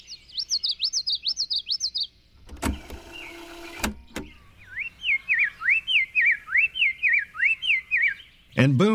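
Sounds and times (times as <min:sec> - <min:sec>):
high swooping bird song: 0:00.0 - 0:08.9
mechanical whirring burst with clicks: 0:02.4 - 0:04.4.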